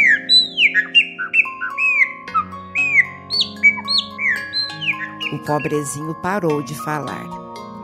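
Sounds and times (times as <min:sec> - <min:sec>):
dense chorus of birds chirping and squawking: 0:00.0 - 0:06.2
speech: 0:05.3 - 0:07.4.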